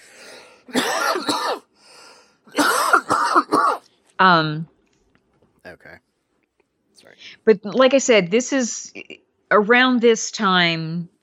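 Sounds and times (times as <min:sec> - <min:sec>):
harsh coughs: 0:00.7 - 0:01.7, 0:02.5 - 0:03.8
speech: 0:04.2 - 0:04.7, 0:07.4 - 0:11.1.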